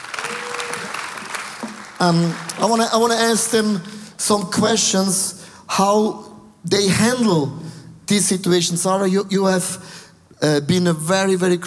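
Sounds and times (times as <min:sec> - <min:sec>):
audience applause: 0:00.0 - 0:03.5
faint tonal whistle or cheer: 0:00.1 - 0:01.0
speech: 0:02.0 - 0:11.6.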